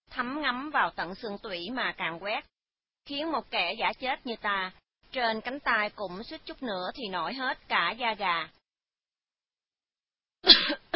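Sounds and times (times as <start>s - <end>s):
speech: 0.2s - 8.6s, 10.4s - 10.8s
woman coughing: 10.4s - 10.9s.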